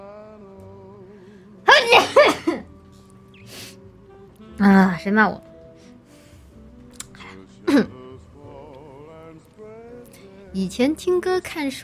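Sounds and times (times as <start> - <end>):
sneeze: 1.7 - 2.6
speech: 4.6 - 5.5, 10.6 - 11.8.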